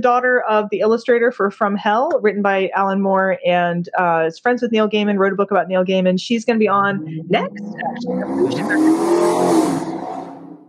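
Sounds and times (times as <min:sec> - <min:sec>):
speech: 0:00.0 - 0:09.8
motorcycle revving while drag racing past an apartment: 0:07.3 - 0:10.6.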